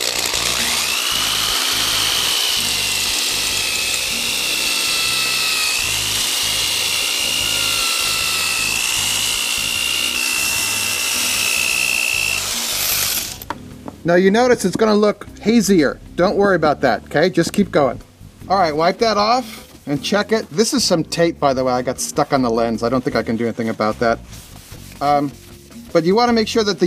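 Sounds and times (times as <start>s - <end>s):
power drill with roughest-grit sanding disc grinding: 0.0s - 13.4s
speech: 14.1s - 26.8s.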